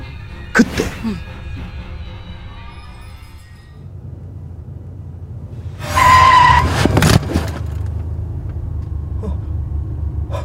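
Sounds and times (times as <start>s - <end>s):
car engine low rumble: 0.0s - 10.4s
speech: 0.6s - 1.8s
car tires screeching while braking hard near a rural bus stop: 3.0s - 10.4s.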